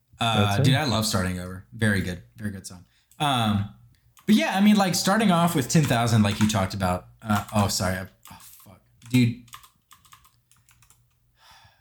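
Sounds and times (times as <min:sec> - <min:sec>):
speech: 0:00.2 - 0:08.5, 0:09.1 - 0:09.4
typing on a computer keyboard: 0:05.5 - 0:06.7, 0:07.3 - 0:11.2.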